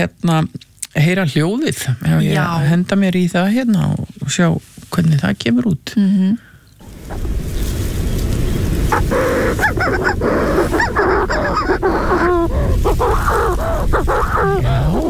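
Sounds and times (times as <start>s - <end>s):
speech: 0.0s - 6.5s, 9.0s - 15.0s
roar of wind or surf: 6.8s - 15.0s
agile flying bird with a black back calling: 7.1s - 15.0s.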